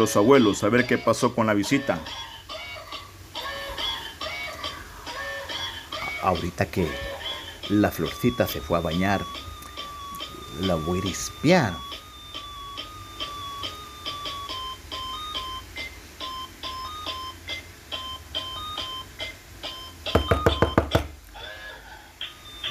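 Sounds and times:
speech: 0:00.0 - 0:02.3, 0:06.2 - 0:07.1, 0:07.7 - 0:09.5, 0:10.5 - 0:11.9
electronic doorbell ringing: 0:06.8 - 0:21.0, 0:22.3 - 0:22.6
loud knocking on door: 0:20.1 - 0:21.2.

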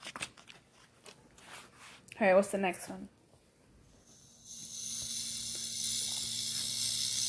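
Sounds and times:
speech: 0:02.2 - 0:03.2
rattlesnake rattling: 0:04.0 - 0:07.2.

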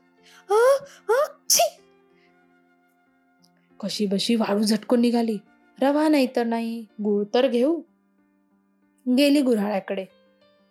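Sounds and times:
voice imitating a vixen sneezing: 0:01.2 - 0:01.8
speech: 0:03.8 - 0:07.9, 0:09.0 - 0:10.2.

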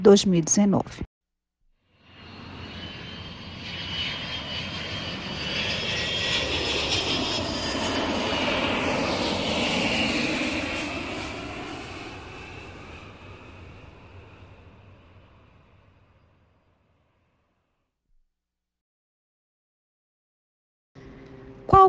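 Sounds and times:
speech: 0:00.0 - 0:01.1
airplane engine droning in flight overhead: 0:01.8 - 0:16.8, 0:21.0 - 0:21.8.

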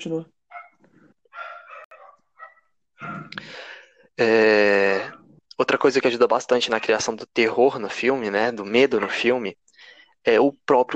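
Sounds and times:
speech: 0:00.0 - 0:00.4, 0:03.0 - 0:09.6, 0:10.2 - 0:10.9
female dog barking: 0:00.5 - 0:03.4, 0:05.0 - 0:05.3.

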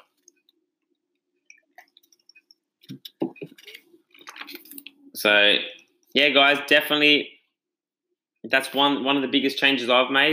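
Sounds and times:
person taking a swig of water: 0:01.3 - 0:05.1
speech: 0:05.2 - 0:07.3, 0:08.4 - 0:10.3.

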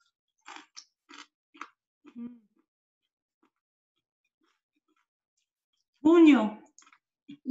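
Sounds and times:
crunchy chewing of homemade dough cooked without oil: 0:00.4 - 0:02.2, 0:04.4 - 0:05.1
speech: 0:06.1 - 0:06.6.

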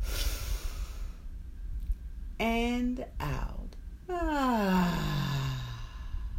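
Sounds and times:
deep breath in during a guided breathing exercise: 0:00.0 - 0:01.2, 0:05.2 - 0:06.3
speech: 0:02.4 - 0:03.5, 0:04.1 - 0:04.9.

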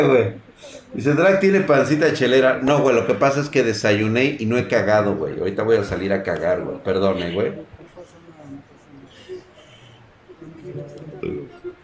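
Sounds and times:
speech: 0:00.0 - 0:07.8
guttural belch: 0:11.2 - 0:11.6
low rumbling burp: 0:11.2 - 0:11.6.

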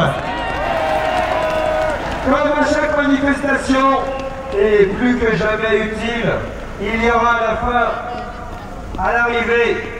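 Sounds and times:
crowd of protesters clapping and cheering at a demonstration: 0:00.0 - 0:04.9
speech: 0:02.3 - 0:08.2, 0:08.9 - 0:09.9.

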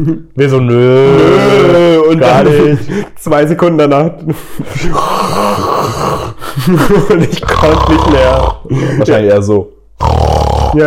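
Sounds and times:
speech: 0:00.0 - 0:10.8
voice imitating loud snoring: 0:00.9 - 0:02.0, 0:04.9 - 0:06.4, 0:07.4 - 0:08.7, 0:10.0 - 0:10.8
laughter: 0:01.2 - 0:03.1, 0:06.4 - 0:07.8.

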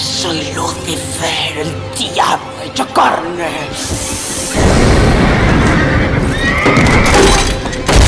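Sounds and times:
speech: 0:00.3 - 0:05.3
restless horses neighing and whinnying: 0:03.9 - 0:07.9.

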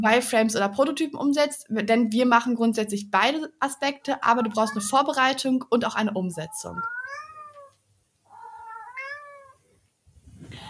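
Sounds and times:
speech: 0:00.0 - 0:07.2
cat meowing: 0:04.3 - 0:05.0, 0:06.4 - 0:09.6.

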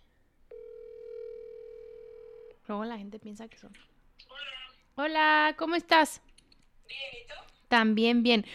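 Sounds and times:
telephone ringing tone while a call is placed: 0:00.5 - 0:02.6
speech: 0:02.7 - 0:06.3, 0:06.9 - 0:08.5.

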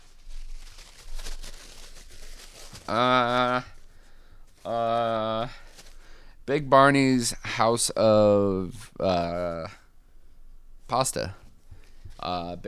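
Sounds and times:
paper rustling while searching through sheets: 0:00.0 - 0:06.2
speech: 0:02.9 - 0:03.7, 0:04.6 - 0:05.6, 0:06.5 - 0:09.8, 0:10.9 - 0:11.4, 0:12.2 - 0:12.6.

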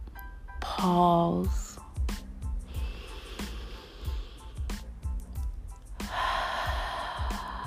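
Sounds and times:
speech: 0:00.8 - 0:01.6
slow deep breath in and out: 0:02.6 - 0:04.9, 0:05.9 - 0:07.6.

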